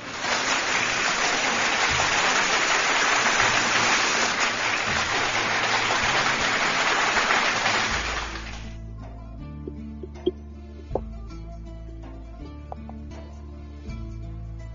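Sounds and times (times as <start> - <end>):
crowd applauding: 0.0 - 8.8.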